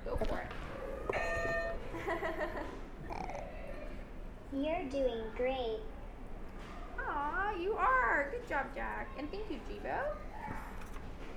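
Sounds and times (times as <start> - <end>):
speech: 0.2 - 0.7, 2.1 - 2.8, 4.5 - 5.9, 7.0 - 10.6
game buzzers sounding bright electronic tones: 1.1 - 2.1.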